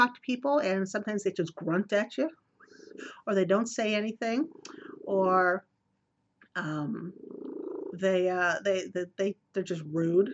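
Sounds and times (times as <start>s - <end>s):
speech: 0.0s - 2.4s, 3.0s - 5.7s, 6.6s - 10.3s
cat purring: 4.4s - 5.6s, 6.8s - 8.6s.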